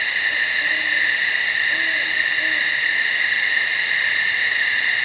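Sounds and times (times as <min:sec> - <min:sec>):
nightingales: 0:00.1 - 0:05.0
owls: 0:00.3 - 0:03.2.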